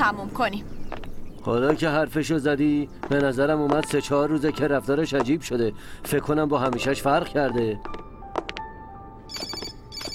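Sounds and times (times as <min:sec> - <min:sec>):
speech: 0:00.0 - 0:00.8, 0:01.4 - 0:08.0
mobile phone ringtone in bright chirping electronic bursts: 0:09.3 - 0:10.1.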